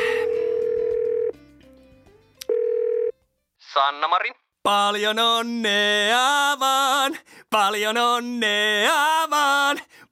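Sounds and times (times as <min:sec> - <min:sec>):
loud steady telephone dial tone: 0:00.1 - 0:01.3, 0:02.5 - 0:03.1
speech: 0:03.8 - 0:10.1.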